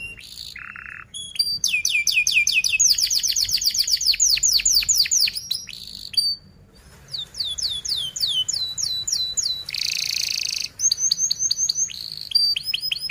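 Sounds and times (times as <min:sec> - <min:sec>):
canary singing: 0:00.0 - 0:13.0.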